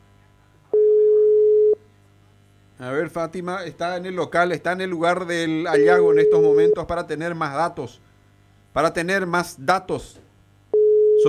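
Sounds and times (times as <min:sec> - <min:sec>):
low hum: 0:00.0 - 0:11.2
telephone call tone beep while redialing after a dropped line: 0:00.7 - 0:01.8, 0:05.7 - 0:06.9, 0:10.7 - 0:11.2
speech: 0:02.8 - 0:08.1, 0:08.8 - 0:10.2.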